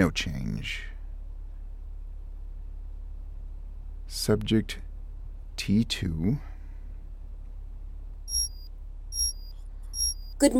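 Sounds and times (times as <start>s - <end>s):
speech: 0.0s - 0.9s, 4.2s - 4.9s, 5.6s - 6.5s, 10.4s - 10.5s
low hum: 0.0s - 10.5s
alarm clock beeping with bright high electronic tone: 8.3s - 10.5s.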